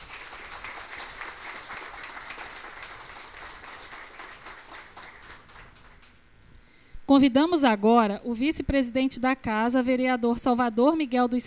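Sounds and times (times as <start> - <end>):
audience applause of many hands clapping: 0.0 - 6.2
speech: 7.1 - 11.4.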